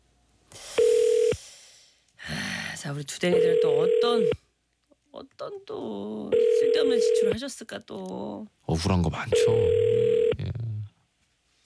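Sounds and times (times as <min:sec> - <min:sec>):
telephone ringback tone of an outgoing call: 0:00.8 - 0:01.4, 0:03.3 - 0:04.4, 0:06.3 - 0:07.4, 0:09.4 - 0:10.4
speech: 0:02.8 - 0:04.4, 0:05.2 - 0:10.0.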